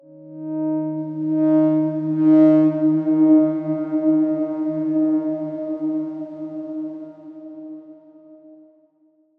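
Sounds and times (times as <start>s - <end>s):
dark swarm synth tone: 0.7s - 8.2s.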